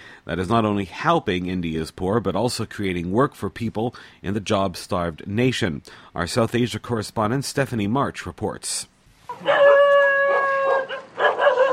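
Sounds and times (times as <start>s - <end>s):
speech: 0.2s - 9.6s
dogs barking and yowling in a slum: 9.3s - 11.7s.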